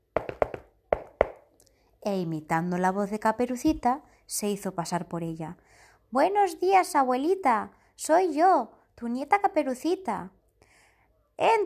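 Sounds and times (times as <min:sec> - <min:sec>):
knocking on the wooden door of a house: 0:00.0 - 0:01.4
speech: 0:02.0 - 0:10.4, 0:11.4 - 0:11.6.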